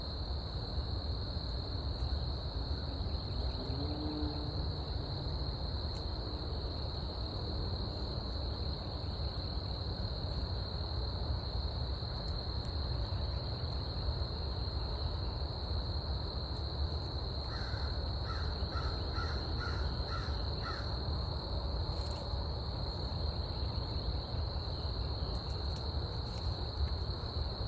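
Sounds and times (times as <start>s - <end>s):
crickets giving a steady high insect trill: 0.0s - 27.6s
crow cawing harshly on Scout Island: 17.5s - 20.9s.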